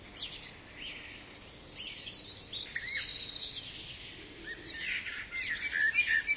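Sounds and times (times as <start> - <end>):
bird: 0.0 - 6.3.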